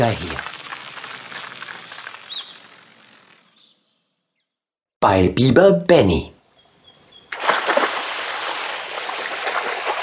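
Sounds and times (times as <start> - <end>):
speech: 0.0 - 0.4, 5.0 - 6.3
loud splash landing in a river: 7.3 - 10.0.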